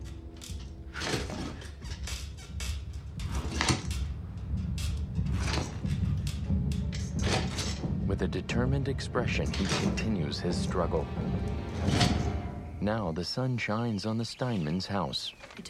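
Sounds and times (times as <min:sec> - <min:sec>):
chair scraping and shuffling jerkily across a hard floor: 0:00.5 - 0:08.1, 0:09.3 - 0:12.8
low rumble: 0:02.6 - 0:13.0
speech: 0:08.2 - 0:12.2, 0:12.8 - 0:15.6.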